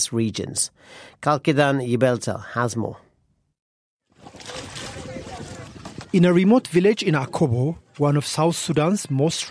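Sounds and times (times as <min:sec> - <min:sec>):
speech: 0:00.0 - 0:03.0, 0:06.1 - 0:09.4
water sloshing and churning: 0:04.1 - 0:06.4.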